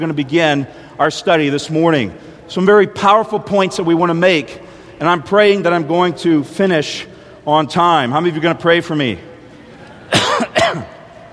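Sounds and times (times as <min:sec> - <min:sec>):
speech: 0:00.0 - 0:09.3
harsh throaty coughs: 0:10.1 - 0:11.0.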